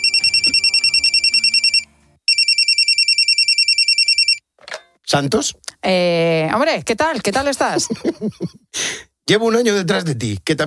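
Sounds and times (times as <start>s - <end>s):
telephone bell ringing: 0.0s - 4.5s
speech: 5.1s - 10.6s.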